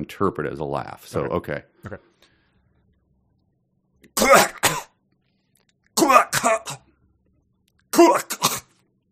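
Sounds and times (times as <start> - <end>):
speech: 0.0 - 2.1
person making hacking cough-barks mimicking a dog: 4.2 - 4.9, 6.0 - 6.9, 8.0 - 8.7.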